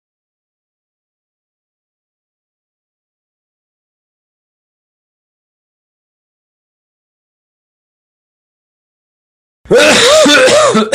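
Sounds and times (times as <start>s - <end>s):
loud harsh throaty cough: 9.7s - 10.9s.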